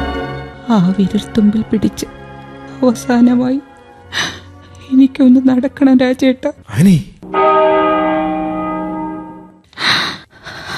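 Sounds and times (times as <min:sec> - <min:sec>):
speech: 0:00.7 - 0:02.2, 0:02.8 - 0:07.9
church bell ringing for a midnight Mass call: 0:07.2 - 0:09.7.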